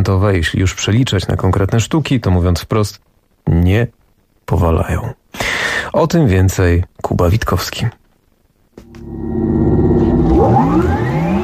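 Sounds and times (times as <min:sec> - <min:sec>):
speech: 0:00.0 - 0:08.0
electric car motor whine as it accelerates: 0:08.9 - 0:11.4.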